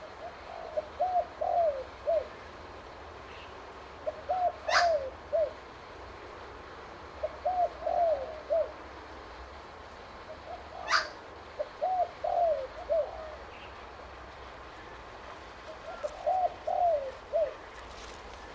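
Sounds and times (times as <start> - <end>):
spotted dove low soft coo-croo-coo phrase: 0.0 - 2.5, 4.0 - 5.6, 7.2 - 8.9, 10.3 - 13.8, 14.8 - 18.5.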